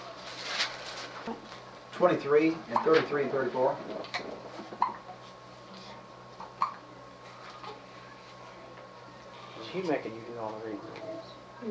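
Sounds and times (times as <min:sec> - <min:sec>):
speech: 0:02.0 - 0:04.5, 0:09.7 - 0:11.6
sharp, short hiccups: 0:04.8 - 0:05.0, 0:06.4 - 0:06.8.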